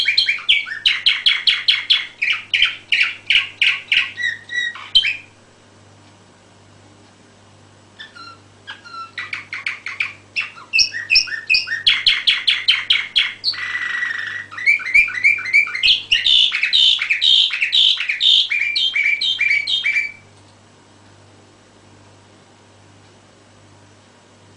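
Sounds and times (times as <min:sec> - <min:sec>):
canary singing chirps, trills and warbled phrases: 0:00.0 - 0:05.4, 0:08.0 - 0:20.3.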